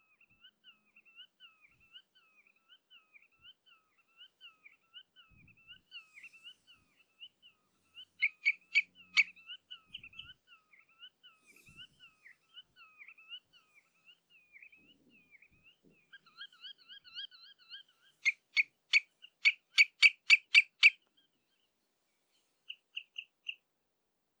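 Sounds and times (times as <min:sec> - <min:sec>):
Tringa totanus redshanks exchanging contact calls: 0:05.4 - 0:21.2.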